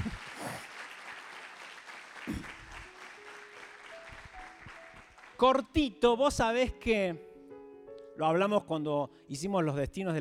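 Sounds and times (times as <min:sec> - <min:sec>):
audience clapping steadily: 0:00.0 - 0:05.4
speech: 0:05.4 - 0:07.3, 0:08.2 - 0:10.1.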